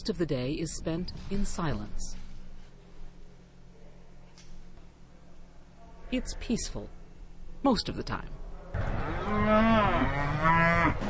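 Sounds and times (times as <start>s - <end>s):
speech: 0.0s - 2.2s, 6.1s - 7.0s, 7.6s - 11.0s
cattle mooing on an abbey working farm: 8.8s - 11.0s.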